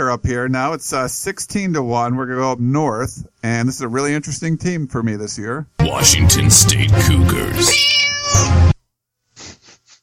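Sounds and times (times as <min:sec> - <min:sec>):
speech: 0:00.0 - 0:08.7
cat meowing: 0:07.5 - 0:08.8.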